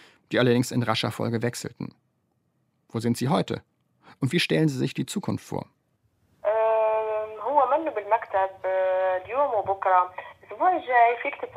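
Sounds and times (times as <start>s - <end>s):
speech: 0.3s - 2.0s, 2.9s - 5.8s, 9.3s - 11.5s
narrow tinny voice down a telephone line: 6.4s - 11.5s.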